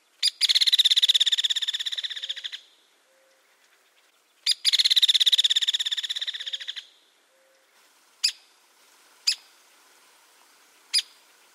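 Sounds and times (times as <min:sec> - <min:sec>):
hairy woodpecker rattling calls: 0:00.2 - 0:03.8, 0:04.4 - 0:08.4, 0:09.3 - 0:09.5, 0:10.9 - 0:11.2.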